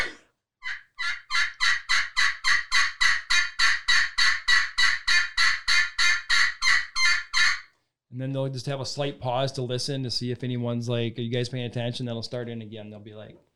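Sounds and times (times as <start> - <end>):
wild turkey boss hen yelping an assembly call: 0.6 - 7.7
speech: 8.2 - 13.5.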